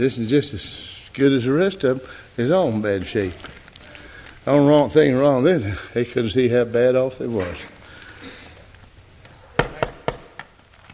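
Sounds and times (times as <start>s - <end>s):
speech: 0.0s - 3.6s, 4.4s - 7.7s
quiet hum: 0.0s - 10.9s
knocking on a wooden surface: 9.6s - 10.4s.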